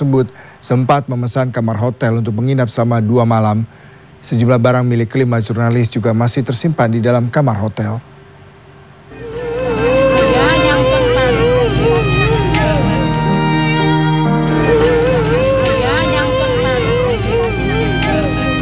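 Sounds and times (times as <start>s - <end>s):
speech: 0.0s - 8.1s
middle-aged woman wailing and sobbing at search-and-rescue boat arrival in Indonesia: 9.1s - 18.6s.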